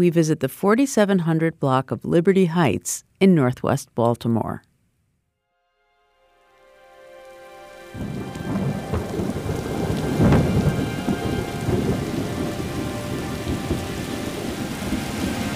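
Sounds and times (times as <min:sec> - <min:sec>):
speech: 0:00.0 - 0:04.7
heavy rain pouring: 0:07.2 - 0:15.5
thunder rumble: 0:08.0 - 0:15.5.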